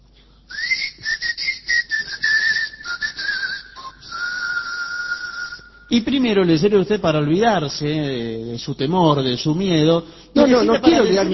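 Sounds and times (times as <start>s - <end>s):
person whistling a short tune: 0.5s - 5.9s
speech: 5.9s - 11.3s.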